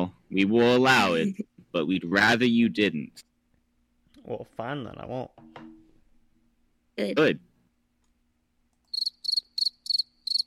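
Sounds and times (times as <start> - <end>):
speech: 0.0 - 3.3, 4.2 - 5.8, 7.0 - 7.5
cricket chirping: 8.9 - 10.4.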